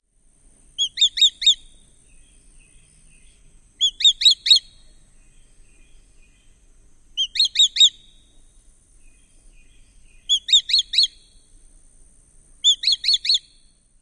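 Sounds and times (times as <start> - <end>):
Swallow-tailed Kite kli-kli-kli alarm calls while perched: 0.8 - 6.6, 7.2 - 8.3, 9.1 - 11.4, 12.6 - 13.7.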